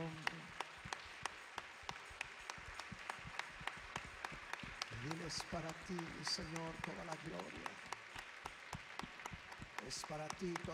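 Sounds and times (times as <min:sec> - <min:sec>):
audience clapping hands in worship: 0:00.0 - 0:10.7
speech: 0:05.3 - 0:07.9, 0:09.8 - 0:10.7.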